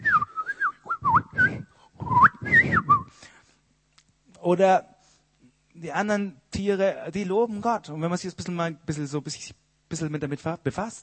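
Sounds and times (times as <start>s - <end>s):
person whistling a warbling birdlike melody imitating birdsong: 0.0s - 3.2s
speech: 4.5s - 4.9s, 5.8s - 11.0s.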